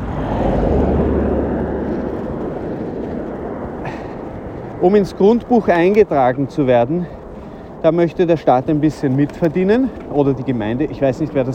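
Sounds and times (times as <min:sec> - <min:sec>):
vehicle engine and road noise driving past: 0:00.0 - 0:04.9
speech: 0:04.8 - 0:07.2, 0:07.8 - 0:11.5.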